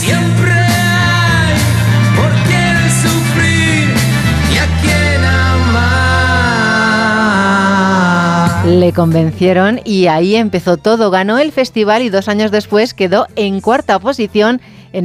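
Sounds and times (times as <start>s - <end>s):
vocal group singing a song: 0.0s - 9.1s
full instrumental backing with a steady bass line: 0.0s - 15.0s
speech: 8.7s - 15.0s.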